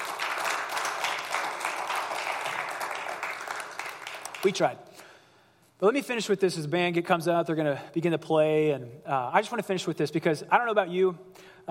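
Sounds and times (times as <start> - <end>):
church audience applause: 0.0 - 4.6
speech: 4.4 - 4.9, 5.8 - 11.6.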